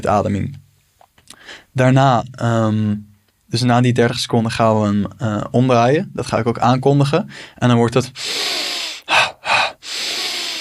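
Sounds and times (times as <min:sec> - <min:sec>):
speech: 0:00.0 - 0:00.6, 0:01.5 - 0:08.4
person breathing in a deliberate breathing exercise: 0:01.3 - 0:01.7, 0:07.3 - 0:07.6, 0:08.2 - 0:10.6.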